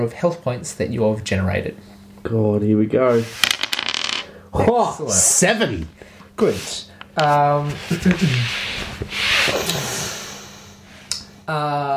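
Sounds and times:
speech: 0.0 - 3.6, 4.5 - 9.9, 11.5 - 11.9
two dice rolling on a table: 3.2 - 4.3.

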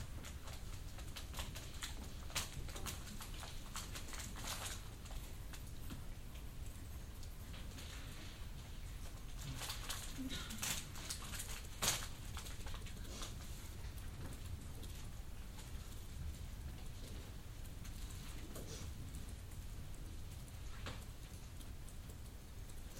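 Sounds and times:
low steady hum in a library reading room: 0.0 - 22.9
soft rustles in a library reading room: 0.0 - 22.9.

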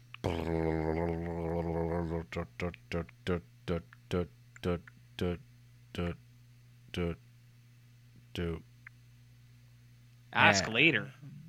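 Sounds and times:
voice imitating a spinning prize wheel: 0.2 - 5.4, 10.4 - 10.9
speech: 2.3 - 6.2, 6.9 - 7.2, 8.4 - 8.7, 10.3 - 11.2.

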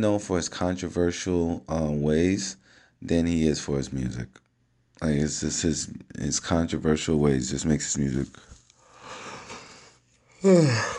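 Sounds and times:
speech: 0.0 - 4.4, 5.0 - 8.5, 10.4 - 10.9
person yawning: 10.4 - 10.9.

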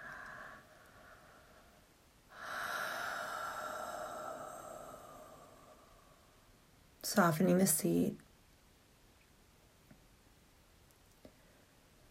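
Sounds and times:
big drawn-out yawn during a guided somatic relaxation: 2.3 - 6.3
speech: 7.1 - 8.2.

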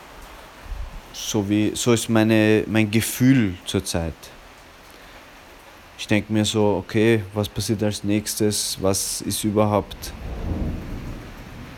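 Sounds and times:
rain hissing: 0.0 - 11.7
speech: 1.2 - 4.4, 6.0 - 10.6
thunder rumbling: 9.1 - 11.7.

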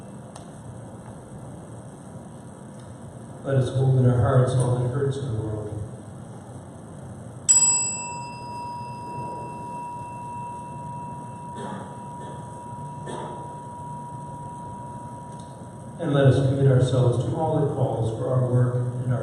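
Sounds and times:
low hum: 0.0 - 19.2
speech: 3.4 - 5.8, 16.4 - 19.2
single bell chime before meditation: 7.5 - 15.7.

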